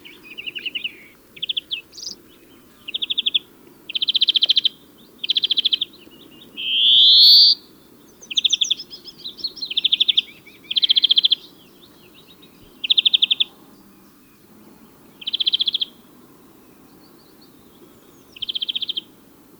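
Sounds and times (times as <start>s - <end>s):
low background noise: 0.0s - 19.5s
European greenfinch Chloris chloris buzzy trills: 6.6s - 7.6s.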